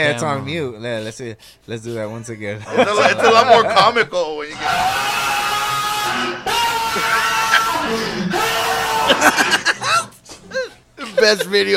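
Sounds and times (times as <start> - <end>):
speech: 0.0 - 5.4, 11.2 - 11.7
laughter: 2.6 - 4.2, 6.6 - 11.7
man screaming in a recorded video: 4.5 - 9.5
crowd noise: 4.5 - 9.9.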